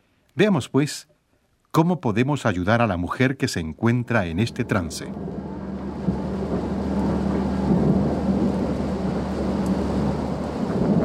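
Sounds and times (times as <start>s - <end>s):
speech: 0.4s - 1.1s, 1.7s - 5.5s
deep continuous rumble of thunder: 3.9s - 11.0s
heavy rain falling in a thunderstorm: 4.1s - 11.0s.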